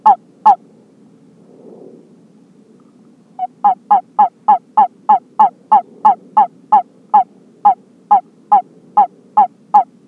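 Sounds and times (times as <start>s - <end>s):
California toad halophilus calling: 3.4s - 10.0s.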